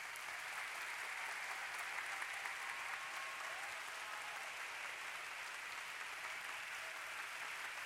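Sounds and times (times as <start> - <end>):
large audience clapping hands: 0.0 - 7.8.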